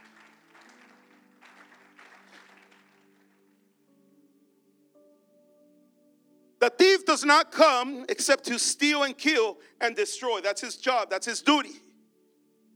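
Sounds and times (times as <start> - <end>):
audience applauding: 0.0 - 3.5
organ or keyboard chords: 0.0 - 12.7
speech: 6.6 - 11.8.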